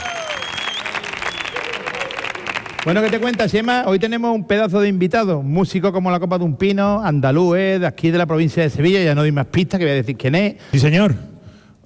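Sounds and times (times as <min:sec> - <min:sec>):
audience applause at a live show in Andalusia: 0:00.0 - 0:03.6
speech: 0:02.8 - 0:11.3.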